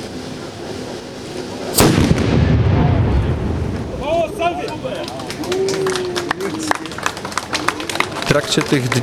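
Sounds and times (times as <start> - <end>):
outdoor crowd noise: 0.0 - 9.0
reconstructed ironworks cannon firing: 1.8 - 4.1
speech: 8.4 - 9.0.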